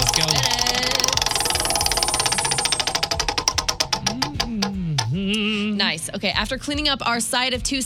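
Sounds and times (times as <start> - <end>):
prize wheel spinning and clicking: 0.0 - 5.1
speech: 5.9 - 7.8.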